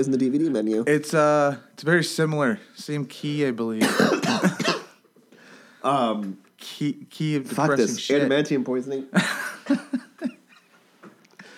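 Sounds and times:
speech: 0:00.0 - 0:04.8, 0:05.8 - 0:10.4
person coughing close to the mic: 0:03.8 - 0:05.0
laughter: 0:09.2 - 0:10.7.

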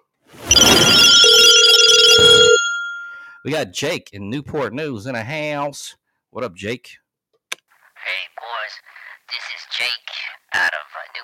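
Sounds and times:
telephone ringing with a loud electronic trill: 0:00.5 - 0:03.4
speech: 0:03.4 - 0:07.0.

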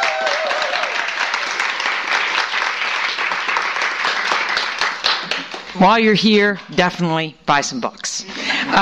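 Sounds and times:
crowd applauding: 0:00.0 - 0:05.7
speech: 0:05.8 - 0:08.8.

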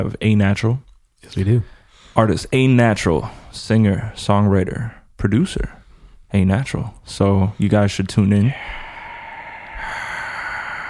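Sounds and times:
speech: 0:00.0 - 0:08.8
heavy hissing breath blown into the microphone: 0:08.4 - 0:10.8.

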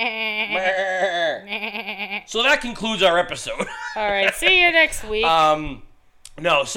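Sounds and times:
speech: 0:00.0 - 0:06.7
sheep bleating: 0:00.5 - 0:02.3.

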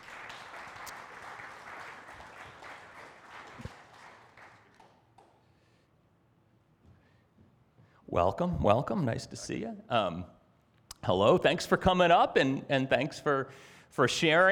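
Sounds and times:
audience applause: 0:00.0 - 0:05.4
speech: 0:08.1 - 0:10.4, 0:11.1 - 0:14.4.

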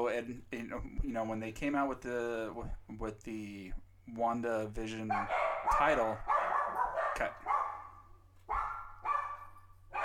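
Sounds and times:
speech: 0:00.0 - 0:06.4, 0:07.2 - 0:07.5
low steady hum: 0:00.0 - 0:10.0
dogs barking at the door: 0:05.1 - 0:10.0.

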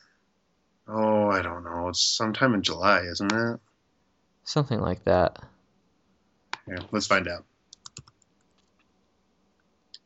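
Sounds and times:
speech: 0:00.9 - 0:03.7, 0:04.5 - 0:05.5, 0:06.7 - 0:07.5
typing on a computer keyboard: 0:07.7 - 0:08.8.

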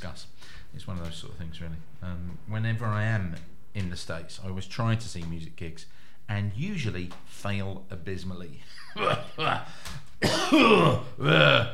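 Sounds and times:
speech: 0:00.0 - 0:11.7
old man coughing: 0:09.0 - 0:11.3
old man clearing his throat: 0:09.0 - 0:11.7.

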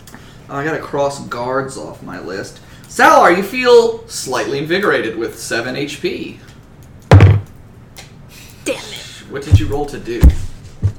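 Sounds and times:
speech: 0:00.5 - 0:06.5, 0:09.3 - 0:10.4
hand slamming a table next to a microphone: 0:07.1 - 0:07.5.

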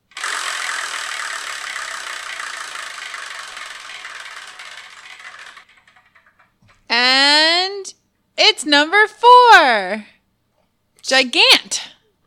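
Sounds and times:
selection wheel spinning to pick the next title to review: 0:00.1 - 0:06.6
speech: 0:08.6 - 0:10.2, 0:11.1 - 0:11.9.

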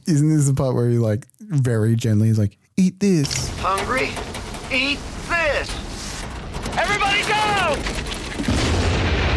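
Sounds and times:
speech: 0:00.1 - 0:05.8, 0:06.8 - 0:08.0
pipe bomb explosion with rumbling roar of dirt and debris near a semi truck: 0:03.5 - 0:09.3.

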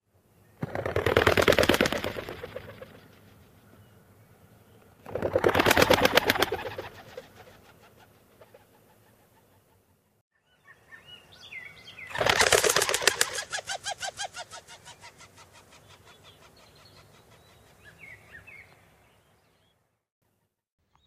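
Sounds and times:
rock pigeons flapping wings taking off: 0:00.6 - 0:03.2, 0:05.0 - 0:09.2, 0:12.1 - 0:16.1.

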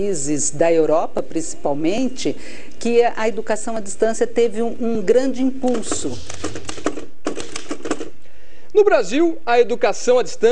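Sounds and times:
speech: 0:00.0 - 0:06.6, 0:08.8 - 0:10.4
mechanical typewriter keystrokes clattering: 0:05.6 - 0:08.2.

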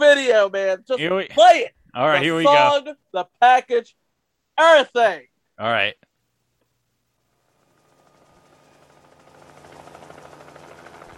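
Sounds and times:
speech: 0:00.1 - 0:04.0, 0:04.6 - 0:06.1
helicopter rotor thumping overhead: 0:07.4 - 0:11.1
helicopter engine roar: 0:07.8 - 0:11.1.

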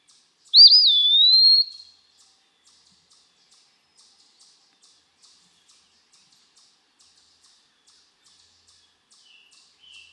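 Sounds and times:
Eastern Wood-Pewee whistled song: 0:00.5 - 0:02.0.

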